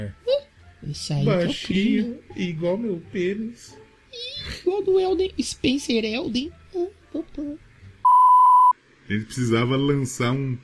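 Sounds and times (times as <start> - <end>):
speech: 0.8 - 3.8, 4.4 - 7.7, 9.1 - 10.6
single-pitched censorship bleep: 8.0 - 8.8.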